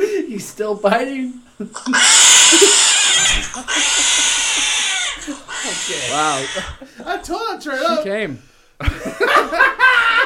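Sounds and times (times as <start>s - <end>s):
speech: 0.3s - 2.4s, 3.6s - 4.3s, 5.9s - 9.8s
laughter: 1.6s - 8.0s, 8.8s - 10.2s
cat in heat yowling: 1.9s - 6.8s.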